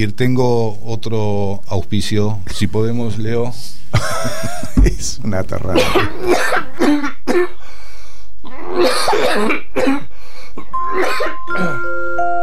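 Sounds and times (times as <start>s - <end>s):
speech: 0.0s - 7.8s, 9.0s - 10.0s, 10.8s - 12.4s
steady tones: 4.8s - 5.5s
person coughing harshly: 5.7s - 7.6s, 8.8s - 11.9s.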